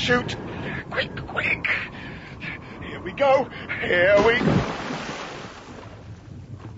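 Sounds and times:
speech: 0.0s - 2.0s, 3.0s - 4.9s
heavy plunge into lake water with churning rushing water: 4.2s - 6.0s.

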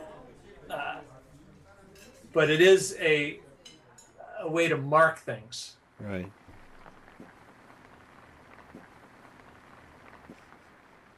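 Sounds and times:
speech: 2.3s - 3.4s, 4.4s - 6.4s
rain falling: 6.3s - 11.1s
water drips: 6.4s - 9.1s, 9.9s - 10.7s.

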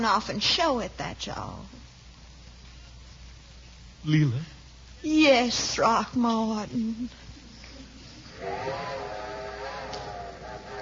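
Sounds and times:
speech: 0.0s - 1.8s, 4.0s - 7.2s
hiss: 0.0s - 10.8s
steam train whistle sounding a chord: 8.3s - 10.8s.

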